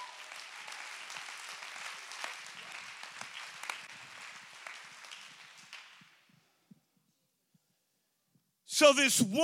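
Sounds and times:
audience clapping to give praise: 0.0 - 6.4
speech: 8.8 - 9.4.

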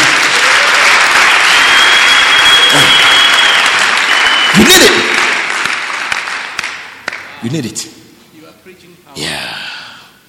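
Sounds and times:
audience clapping during a church sermon: 0.0 - 7.6
speech: 4.8 - 5.1, 7.5 - 8.0.

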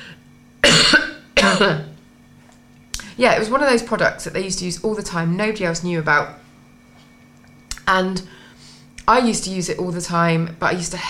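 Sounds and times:
harsh coughs made in sympathy: 0.6 - 1.9
speech: 1.4 - 1.9, 3.2 - 6.4, 7.9 - 8.4, 9.1 - 11.0.

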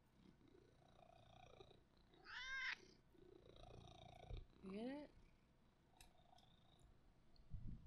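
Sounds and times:
cat purring: 0.0 - 7.0
cat meow-like trill: 2.2 - 2.8
speech: 4.6 - 5.2.

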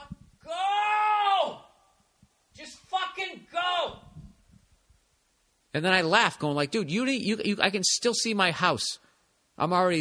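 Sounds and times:
man in a car yelling angrily at another driver: 0.0 - 1.8, 2.6 - 4.2
speech: 5.8 - 9.9.

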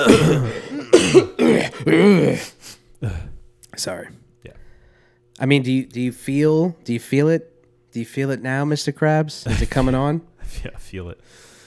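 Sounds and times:
throat clearing: 0.0 - 3.4, 9.5 - 10.1
coughing: 0.0 - 3.5, 9.4 - 10.2
speech: 0.0 - 4.6, 5.4 - 11.5.

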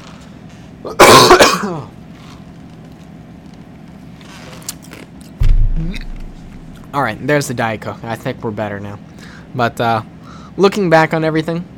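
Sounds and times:
low steady hum: 0.0 - 10.6
speech: 0.8 - 2.0, 6.9 - 11.7
person clearing throat: 0.9 - 1.9
dull low thump: 5.4 - 6.9.

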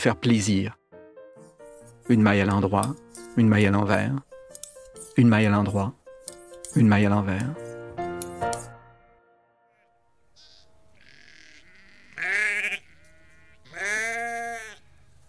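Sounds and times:
speech: 0.0 - 0.8, 2.1 - 4.3, 5.2 - 6.0, 6.8 - 7.6
sheep bleating: 9.7 - 14.9.

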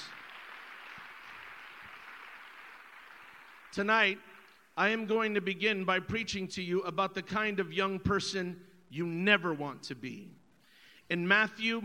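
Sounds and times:
large crowd audience applauding: 0.0 - 4.6
speech: 3.7 - 10.4, 11.1 - 11.8.

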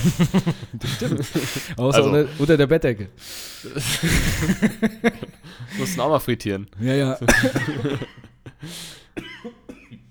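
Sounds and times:
laughter: 0.0 - 2.6, 3.7 - 6.2, 6.9 - 8.7
speech: 0.0 - 9.3
person coughing after choking on something: 7.3 - 8.3, 9.2 - 10.1.

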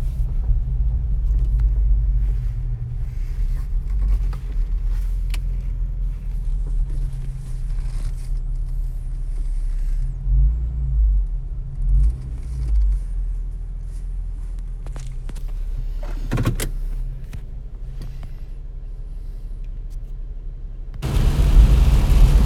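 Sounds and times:
low rumble from inside a moving car: 0.0 - 22.4
rain tapping across a car windshield: 21.0 - 22.4.

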